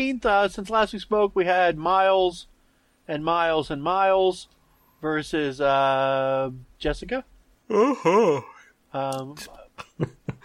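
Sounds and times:
speech: 0.0s - 2.5s, 3.1s - 10.4s
person giving a voiced excited yawn: 7.7s - 8.7s.

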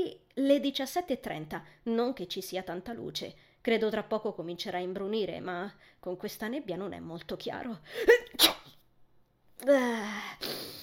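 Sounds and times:
speech: 0.0s - 8.6s, 9.6s - 10.8s
person sneezing: 7.9s - 8.8s, 10.2s - 10.8s
drawn-out voiced exhale: 10.0s - 10.8s.

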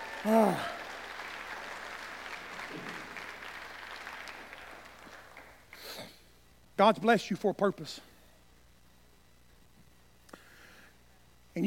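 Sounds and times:
congregation clapping hands in applause: 0.0s - 6.2s
speech: 0.2s - 0.8s, 6.8s - 8.1s.

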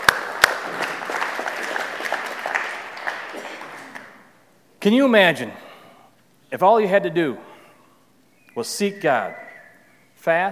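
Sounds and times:
audience clapping: 0.0s - 4.4s
speech: 4.8s - 5.6s, 6.5s - 7.5s, 8.6s - 9.4s, 10.2s - 10.4s.

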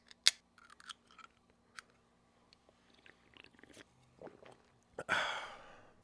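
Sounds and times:
person sipping a drink with wet mouth clicks and slurping: 2.6s - 5.2s.

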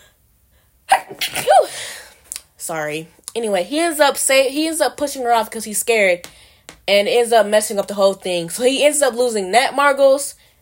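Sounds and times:
loud sneeze: 0.9s - 1.8s
speech: 2.7s - 10.4s.

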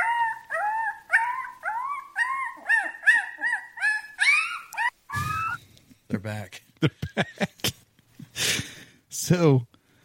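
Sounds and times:
wolf pups whimpering and howling: 0.0s - 5.6s
speech: 6.2s - 7.8s, 9.3s - 9.7s.

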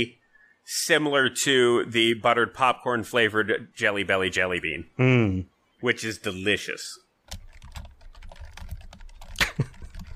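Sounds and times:
speech: 0.0s - 7.4s
rapid forceful typing on a computer keyboard: 7.3s - 10.1s.

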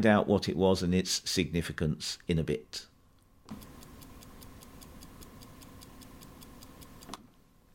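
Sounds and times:
speech: 0.0s - 2.9s
clock ticking: 3.5s - 7.1s.

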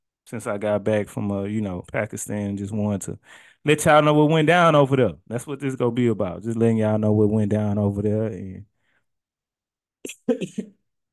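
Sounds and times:
speech: 0.3s - 8.7s, 10.0s - 10.8s
person coughing while getting over a cold: 10.1s - 10.8s.

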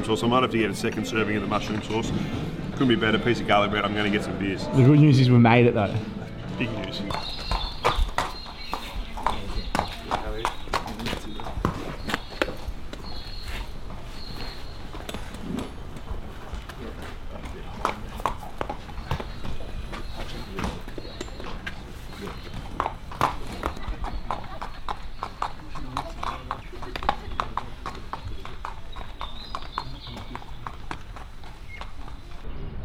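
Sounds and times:
speech: 0.0s - 7.5s
horse hooves clip-clopping on a hard surface: 6.4s - 32.5s.

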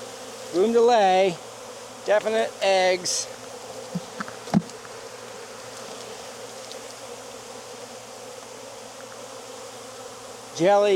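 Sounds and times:
honeybees buzzing in an open hive: 0.0s - 10.9s
speech: 0.5s - 3.4s, 10.6s - 10.9s.

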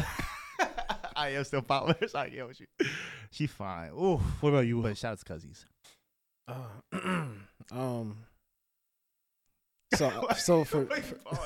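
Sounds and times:
speech: 1.2s - 5.7s, 6.5s - 8.3s, 9.9s - 11.4s
man clearing his throat: 6.5s - 7.6s.

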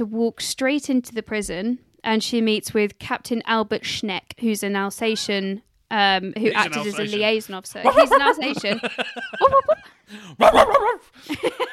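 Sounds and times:
speech: 0.0s - 11.7s
laughter: 6.5s - 11.7s
Alsatian dog barking and yelping: 10.4s - 11.1s.

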